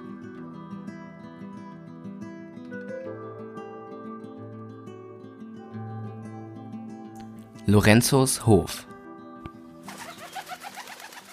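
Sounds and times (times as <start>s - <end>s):
speech: 7.6s - 8.9s
pigeon cooing: 9.9s - 11.3s.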